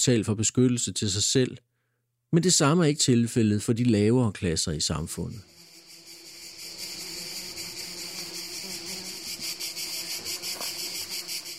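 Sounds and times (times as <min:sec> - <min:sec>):
speech: 0:00.0 - 0:01.7, 0:02.3 - 0:05.6
dense chorus of cicadas droning in the mountains: 0:05.2 - 0:11.5.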